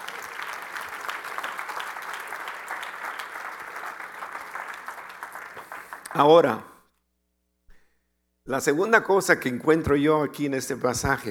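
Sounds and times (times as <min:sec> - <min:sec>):
audience applauding: 0:00.0 - 0:06.6
speech: 0:06.2 - 0:06.7, 0:08.5 - 0:11.2.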